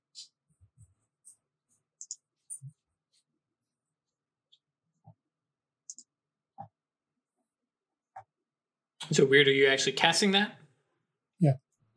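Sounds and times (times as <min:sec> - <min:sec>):
computer mouse clicks: 0:02.0 - 0:02.3, 0:05.9 - 0:06.8
speech: 0:09.1 - 0:10.6, 0:11.4 - 0:11.9.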